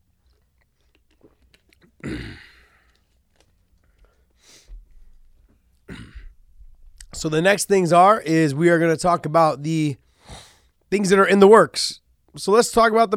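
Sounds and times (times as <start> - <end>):
person with a slight cold coughing and clearing throat: 1.9 - 2.9, 5.9 - 6.4
speech: 7.2 - 10.0, 10.9 - 13.1.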